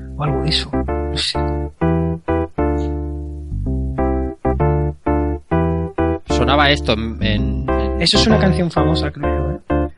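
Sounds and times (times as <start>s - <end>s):
bright buzzy video game secret stage music with film-like tune: 0.0s - 9.9s
speech: 0.2s - 1.8s, 6.6s - 9.4s.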